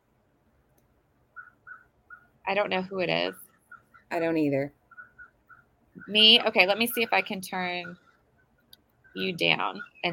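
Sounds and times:
quiet outdoor background: 0:00.0 - 0:10.1
short tonal bird chirps outdoors: 0:01.3 - 0:02.4, 0:04.9 - 0:10.1
speech: 0:02.5 - 0:03.4, 0:04.1 - 0:04.8, 0:06.0 - 0:08.0, 0:09.2 - 0:10.1.

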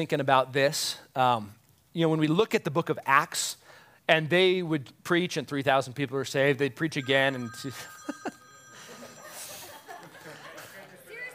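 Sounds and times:
speech: 0:00.0 - 0:08.4
telephone ringing: 0:07.0 - 0:10.2
people chuckling softly: 0:08.0 - 0:11.3.

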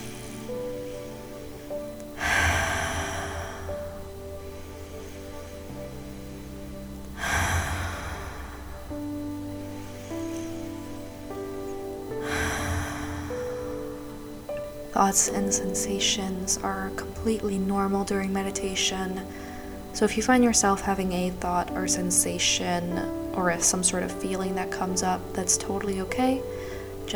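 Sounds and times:
deep cleansing breaths during a guided meditation: 0:00.0 - 0:14.9, 0:19.2 - 0:20.0, 0:26.4 - 0:27.1
soft sustained musical drone: 0:00.0 - 0:27.1
speech: 0:15.0 - 0:19.4, 0:20.0 - 0:27.1.

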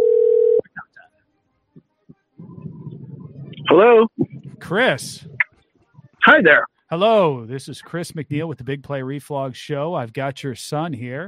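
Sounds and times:
telephone dial tone: 0:00.0 - 0:00.6
low rumbling noise: 0:02.4 - 0:05.4
speech: 0:03.7 - 0:05.3, 0:06.3 - 0:11.2.

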